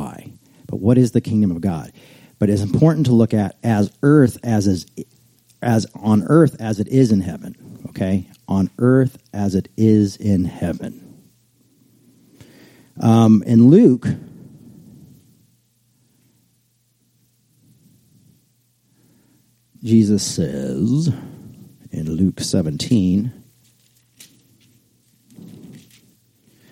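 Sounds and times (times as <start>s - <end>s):
speech: 0.8s - 11.0s, 13.0s - 14.3s, 19.8s - 21.3s, 21.9s - 23.4s
audience rustling Bible pages: 23.5s - 26.2s.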